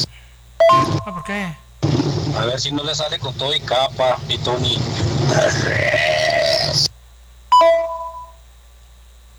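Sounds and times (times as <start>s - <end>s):
two-tone telephone keypad beep: 0.6s - 1.3s, 7.5s - 8.4s
speech: 0.7s - 1.7s, 2.3s - 6.9s.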